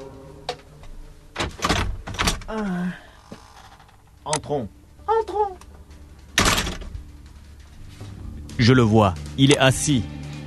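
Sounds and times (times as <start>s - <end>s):
door opening: 0.0s - 4.4s, 6.4s - 7.1s
speech: 2.5s - 3.0s, 4.2s - 5.7s, 8.6s - 10.2s.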